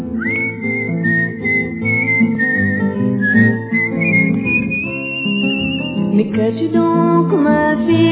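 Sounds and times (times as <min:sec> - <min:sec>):
full sustained musical accompaniment: 0:00.0 - 0:08.1
person whistling a tune: 0:00.1 - 0:06.2.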